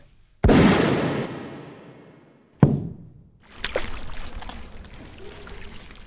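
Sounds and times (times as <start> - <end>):
loud sharp gunshots: 0.4 - 3.2
swimming pool water churning and sloshing: 3.4 - 6.0.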